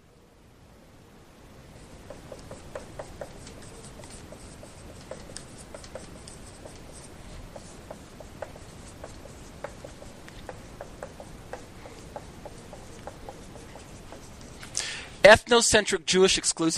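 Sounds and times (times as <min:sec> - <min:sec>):
chalk or marker scratching across a board: 0:01.8 - 0:14.7
speech: 0:15.3 - 0:16.7.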